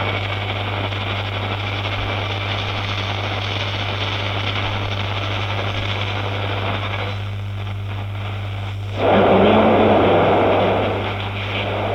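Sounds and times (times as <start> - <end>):
old radio static hiss: 0.0 - 11.9
constant low hum: 8.8 - 11.9
warbling, wavering radio tone: 9.0 - 11.9.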